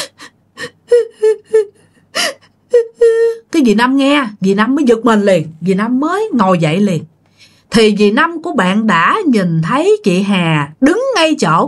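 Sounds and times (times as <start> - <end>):
crying woman sobbing quietly: 0.0 - 3.5
speech: 3.7 - 7.1, 7.7 - 11.6.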